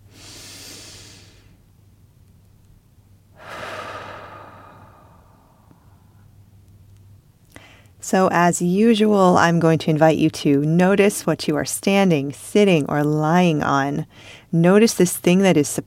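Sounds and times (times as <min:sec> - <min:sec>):
person breathing in a slow breathing exercise: 0:00.0 - 0:01.6, 0:03.4 - 0:06.2, 0:07.5 - 0:08.0, 0:14.1 - 0:14.5
faint steady hum: 0:00.0 - 0:15.8
speech: 0:08.1 - 0:15.8.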